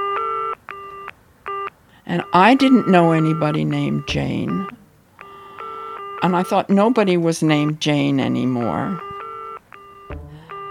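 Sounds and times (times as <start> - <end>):
telephone keypad DTMF tones as a number is dialed: 0.0 - 7.1, 8.2 - 10.7
speech: 2.1 - 4.8, 6.2 - 9.1
low thump between key presses: 10.1 - 10.4.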